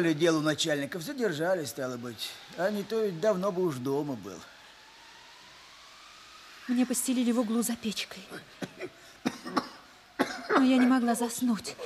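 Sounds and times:
speech: 0.0 - 4.5, 6.7 - 9.6, 10.6 - 11.8
old man coughing in short rough hacking bursts: 8.3 - 11.0.

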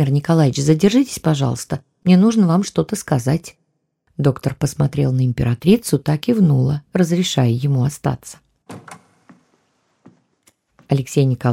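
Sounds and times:
speech: 0.0 - 3.6, 4.2 - 9.0, 10.9 - 11.5
door latch clicks and knocks settling: 8.7 - 9.4
door swinging shut with solid thuds: 8.7 - 10.2.

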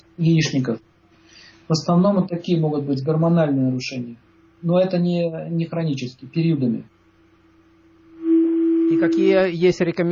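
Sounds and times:
faint hiss: 0.0 - 10.1
speech: 0.2 - 0.9, 1.7 - 7.0, 9.0 - 10.1
steady loud radio feedback tone on a phone line: 8.0 - 9.8.

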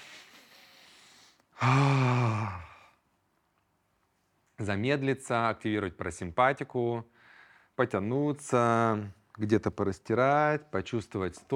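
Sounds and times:
triple nasal inhale as a breathing exercise: 0.0 - 2.6, 7.2 - 7.7
loud voiced sigh exhaled through the mouth: 0.0 - 3.0
speech: 1.6 - 2.0, 4.6 - 7.1, 7.8 - 11.5.

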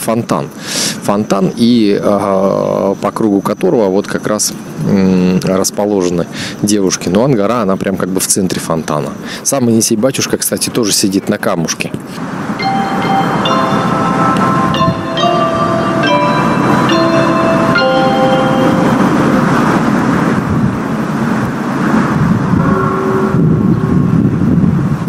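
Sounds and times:
speech: 0.0 - 12.6
steady outdoor city noise: 0.0 - 25.0
deeper clock tower bell strike marking one o'clock: 12.6 - 20.1, 22.6 - 24.2
clock tower bells chiming: 12.6 - 20.2.

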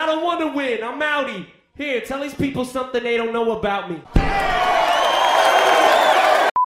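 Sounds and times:
speech: 0.1 - 4.8
unfriendly crowd roaring and whooping at a rap battle: 4.2 - 6.6.

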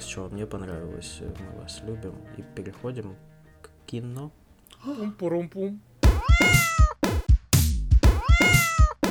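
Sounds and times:
speech: 0.2 - 3.3, 3.9 - 6.6
cat meowing: 6.0 - 7.0, 8.1 - 9.0.

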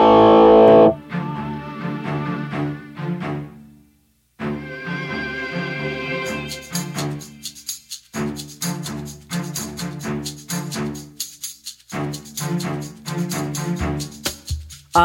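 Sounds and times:
rock song with distorted electric guitars playing on radio: 0.0 - 1.0.

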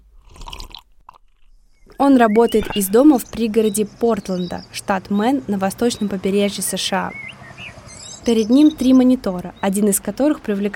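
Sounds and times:
slurping sip of coffee: 0.0 - 1.5
swallow-like sound: 0.2 - 1.5, 2.5 - 3.0
speech: 2.0 - 7.4, 8.2 - 10.7.

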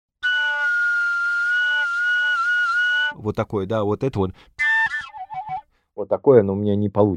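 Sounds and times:
reedy dudka pipe playing a semitone glissando: 0.2 - 3.4, 4.6 - 5.6
speech: 3.2 - 4.5, 6.0 - 7.1.

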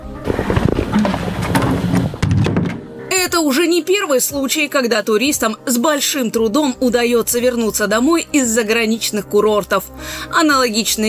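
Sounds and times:
clattering knocks and rattles: 0.2 - 3.0
door slamming shut with a loud hollow thud: 0.2 - 3.0
speech: 3.4 - 11.0.

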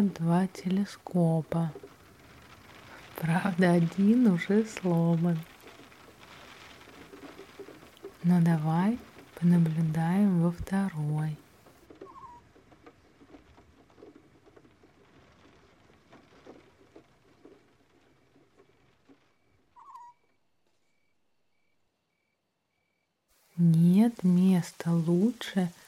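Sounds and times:
speech: 0.0 - 1.8, 3.2 - 5.5, 8.2 - 11.4, 23.6 - 25.8
raindrops pattering on wooden boards: 0.0 - 20.8, 23.3 - 25.8
bird chirps: 12.0 - 12.4, 19.8 - 20.3.

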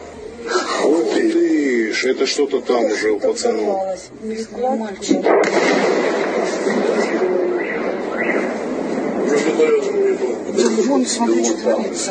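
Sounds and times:
faint voices murmuring: 0.0 - 12.1
steady rumble: 0.0 - 12.1
speech: 2.0 - 7.4, 9.6 - 12.1
distant explosion from a drone strike near Uyutnoye by Yevpatoria: 5.0 - 12.1.

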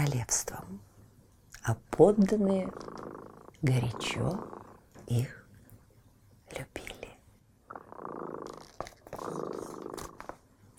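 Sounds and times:
speech: 0.0 - 0.8, 1.6 - 3.0, 3.6 - 5.4, 6.5 - 6.9
cat purring: 2.2 - 5.4, 7.7 - 10.4.

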